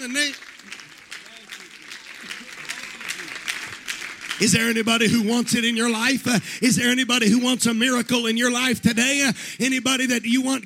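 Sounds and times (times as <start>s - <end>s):
speech: 0.0s - 0.8s, 4.4s - 10.6s
crowd clapping: 0.0s - 7.1s, 9.6s - 10.6s.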